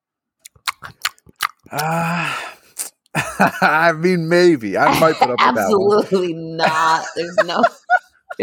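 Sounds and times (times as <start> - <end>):
wet smacking and crunching of open-mouthed chewing: 0.4 - 3.2
speech: 1.7 - 2.4, 3.4 - 7.8
person humming or groaning: 1.7 - 2.5
laughter: 3.2 - 8.4.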